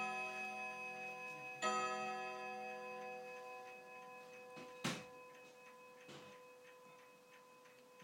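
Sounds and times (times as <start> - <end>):
chiming clock bell-like chime: 0.0 - 8.0
chiming clock mechanical clicks: 1.6 - 8.0.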